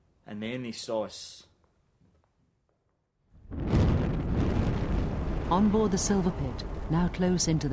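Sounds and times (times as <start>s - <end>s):
speech: 0.3s - 1.5s, 5.5s - 7.7s
gas riser explosion rolling into a fireball: 3.4s - 7.0s.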